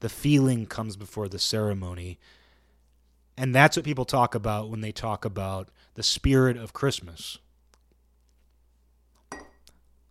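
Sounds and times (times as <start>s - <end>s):
speech: 0.0s - 2.4s, 3.4s - 7.4s
ceramic tea mug clinking against hard kitchen countertop: 9.3s - 9.7s.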